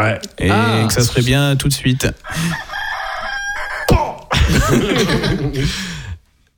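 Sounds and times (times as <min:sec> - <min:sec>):
speech: 0:00.0 - 0:02.7, 0:04.5 - 0:06.0
person imitating a rooster crowing: 0:02.2 - 0:04.3
laughter: 0:03.7 - 0:06.1.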